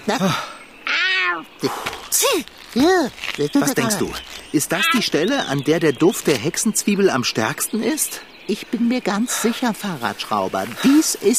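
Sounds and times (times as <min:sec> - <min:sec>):
speech: 0:00.1 - 0:00.5, 0:01.6 - 0:11.3
male cat meowing while being held: 0:00.8 - 0:01.5.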